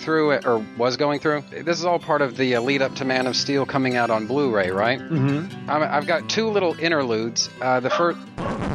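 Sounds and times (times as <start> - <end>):
speech: 0.0 - 8.6
dog barking loudly: 7.9 - 8.6.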